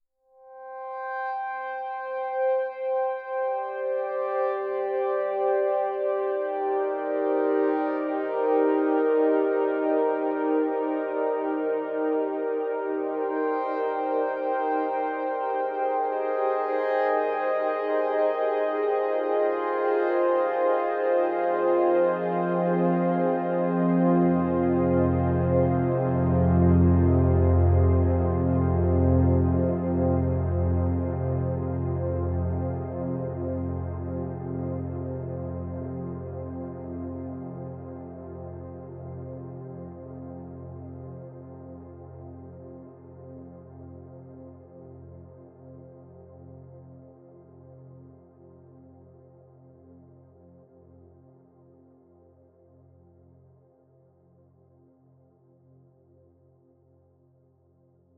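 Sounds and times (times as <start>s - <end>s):
Shruthi synthesizer pad: 0.5s - 54.0s.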